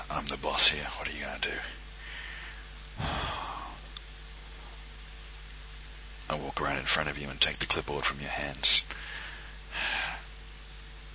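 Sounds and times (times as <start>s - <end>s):
low steady hum: 0.0s - 11.1s
speech: 0.2s - 1.8s, 6.6s - 9.9s
deep inhale: 2.0s - 3.9s, 8.9s - 10.4s.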